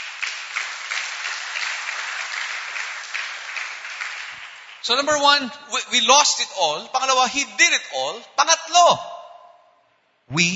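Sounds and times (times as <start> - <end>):
church congregation applauding: 0.0 - 5.6
speech: 4.8 - 9.1, 10.3 - 10.5.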